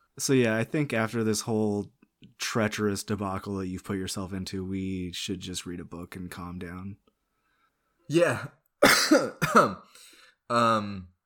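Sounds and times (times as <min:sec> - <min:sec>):
speech: 0:00.2 - 0:07.0, 0:08.1 - 0:11.1
person coughing: 0:08.8 - 0:09.9.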